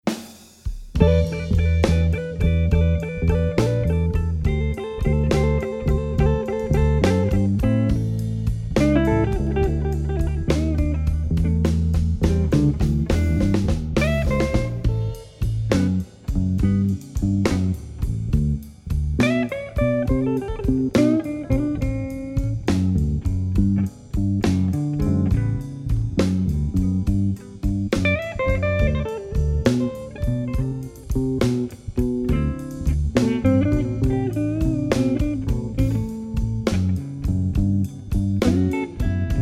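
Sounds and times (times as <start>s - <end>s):
Chicago Westside slow blues drumming: 0.0s - 39.4s.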